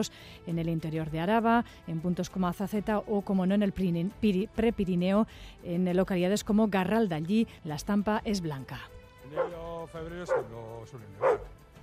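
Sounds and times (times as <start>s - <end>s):
speech: 0.0s - 11.6s
dog barking: 9.3s - 9.6s, 10.3s - 10.6s, 11.2s - 11.6s.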